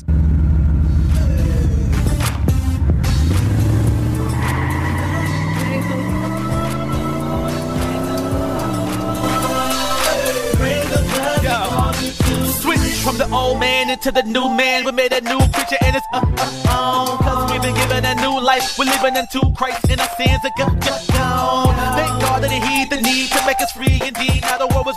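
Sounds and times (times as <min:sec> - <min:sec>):
car engine starting and revving: 0:00.0 - 0:13.6
speech: 0:13.9 - 0:24.9.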